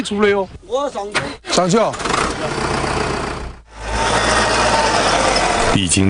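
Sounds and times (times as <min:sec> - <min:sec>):
speech: 0:00.0 - 0:03.1, 0:05.8 - 0:06.0
heavy vehicle engine running for clearing abandoned farmland: 0:01.5 - 0:06.0.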